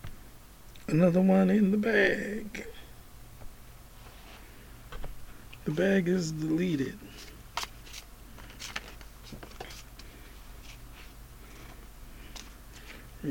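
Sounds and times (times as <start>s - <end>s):
faint hum: 0.0s - 13.2s
speech: 0.9s - 2.7s, 5.7s - 7.3s
deck of playing cards being shuffled: 7.1s - 13.2s.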